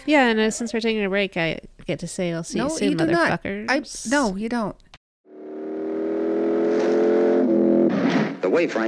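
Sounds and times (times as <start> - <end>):
speech: 0.0 - 4.8, 8.4 - 8.8
car engine revving hard with a throaty roar: 5.3 - 8.7.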